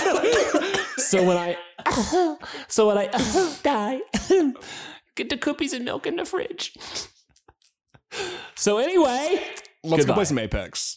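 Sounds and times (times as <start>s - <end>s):
person coughing theatrically: 0.0s - 1.2s, 1.8s - 2.4s, 4.2s - 4.6s
laughter: 0.0s - 1.9s
speech: 1.1s - 7.2s, 8.1s - 10.9s.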